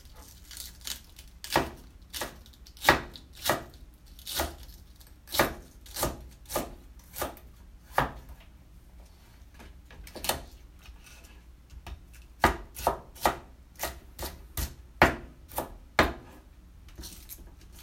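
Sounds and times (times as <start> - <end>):
knife chopping on a board in a kitchen: 1.4 - 4.6, 5.3 - 8.3, 10.1 - 10.5, 11.8 - 16.4.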